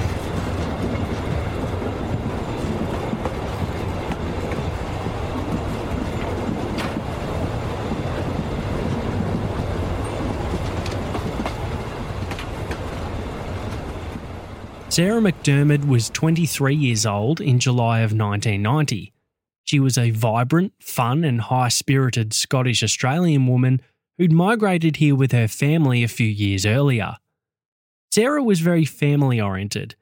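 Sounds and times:
train wheels clacking on rails: 0:00.0 - 0:16.6
train rolling with a low rumble: 0:00.0 - 0:18.6
speech: 0:15.0 - 0:27.2, 0:28.1 - 0:29.9.

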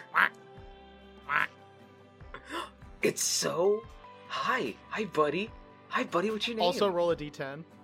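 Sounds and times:
voice imitating duck quacks: 0:00.0 - 0:00.4, 0:01.2 - 0:01.6
speech: 0:03.0 - 0:07.8.

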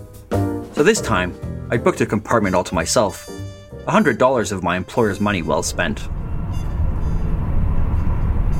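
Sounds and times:
speech: 0:00.8 - 0:06.2
night train shuddering and thumping on rails: 0:05.4 - 0:08.5.

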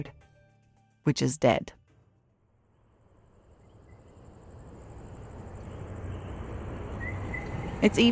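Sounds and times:
speech: 0:00.0 - 0:00.2, 0:01.0 - 0:01.8, 0:07.8 - 0:08.1
chorus of frogs chirping at night: 0:02.8 - 0:08.1.

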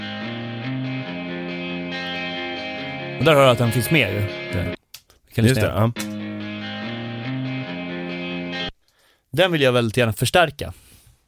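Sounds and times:
distorted electric guitar counter-riff in a song mix: 0:00.0 - 0:04.8, 0:05.5 - 0:08.7
speech: 0:03.2 - 0:04.8, 0:05.4 - 0:06.0, 0:09.4 - 0:10.8.

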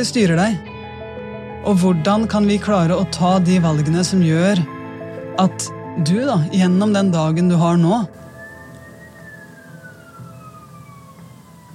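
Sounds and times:
speech: 0:00.0 - 0:00.7, 0:01.6 - 0:04.8, 0:05.4 - 0:08.2
ambulance siren wailing outside: 0:08.1 - 0:11.7
low rumble of traffic: 0:08.1 - 0:11.7.

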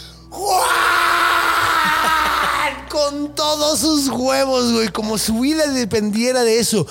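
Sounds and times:
voice imitating a terrified scream: 0:00.3 - 0:03.0
laughter: 0:01.6 - 0:02.8
speech: 0:03.0 - 0:06.8.

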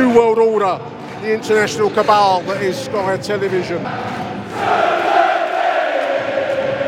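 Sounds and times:
speech: 0:00.2 - 0:05.0
sellout football crowd chanting and roaring: 0:03.8 - 0:06.8.

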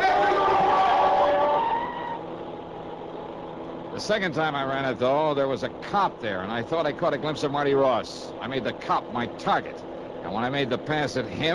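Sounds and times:
car tires skidding in a long loud screech: 0:00.0 - 0:03.1
car speeding across an intersection: 0:00.0 - 0:11.5
speech: 0:04.0 - 0:11.5.

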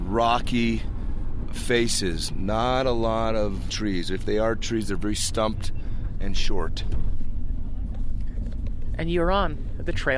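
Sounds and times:
bus engine rumble: 0:00.0 - 0:10.1
road noise inside a moving bus: 0:00.0 - 0:10.1
speech: 0:00.1 - 0:07.1, 0:09.0 - 0:10.1.

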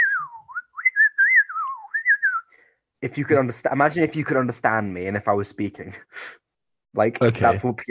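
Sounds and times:
person whistling a melodic speech-like line: 0:00.0 - 0:02.6
speech: 0:03.0 - 0:07.8.

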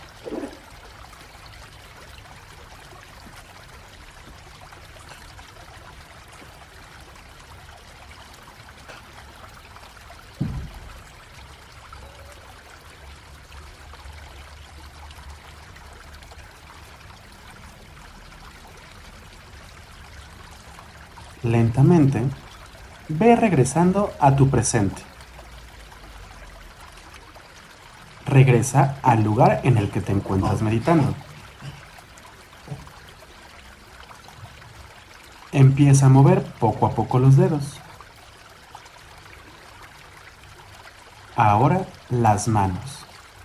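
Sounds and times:
flowing river water: 0:00.0 - 0:43.4
low thumps: 0:10.4 - 0:11.0
speech: 0:21.4 - 0:22.4, 0:23.1 - 0:25.1, 0:28.4 - 0:31.3, 0:35.8 - 0:37.8, 0:41.4 - 0:43.0.

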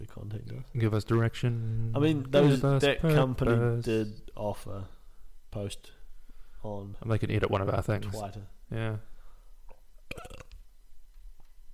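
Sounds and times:
faint low hum: 0:00.0 - 0:11.7
speech: 0:00.1 - 0:06.0, 0:06.6 - 0:09.1
short rough rattling burp: 0:10.1 - 0:10.6.

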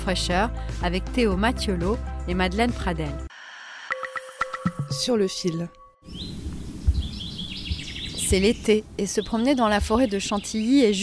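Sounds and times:
speech: 0:00.0 - 0:03.3, 0:04.9 - 0:06.4, 0:08.3 - 0:11.0
several birds chirping and trilling in a summer forest: 0:05.2 - 0:11.0
low outdoor rumble of wind: 0:06.0 - 0:11.0.

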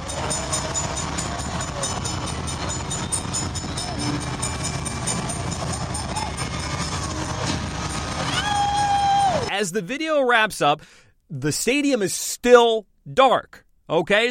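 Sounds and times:
train pulling away from the station: 0:00.0 - 0:09.5
sharp high-pitched screech: 0:00.7 - 0:09.5
speech: 0:09.6 - 0:14.2.

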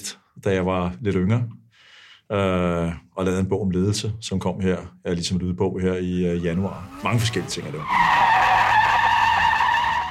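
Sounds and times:
speech: 0:00.4 - 0:01.6, 0:02.3 - 0:08.3
tire screeching from hard braking: 0:06.3 - 0:10.0.

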